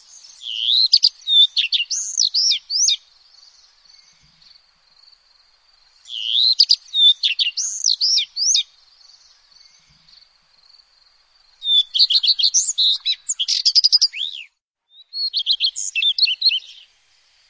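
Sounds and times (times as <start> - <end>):
bird song in high rapid phrases of looping whistled notes: 0.0 - 3.0, 6.0 - 8.7, 11.6 - 16.9.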